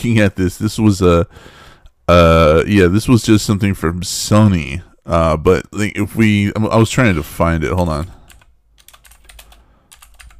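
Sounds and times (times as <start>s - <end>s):
speech: 0.0s - 8.2s
rapid typing on a computer keyboard: 8.3s - 10.3s.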